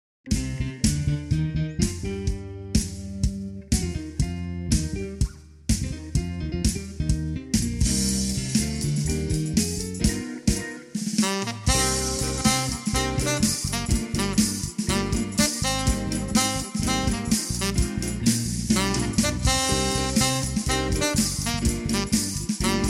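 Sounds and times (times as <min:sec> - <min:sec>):
piano accompaniment: 0:00.3 - 0:22.8
retro groove tenor saxophone playing: 0:11.2 - 0:22.8.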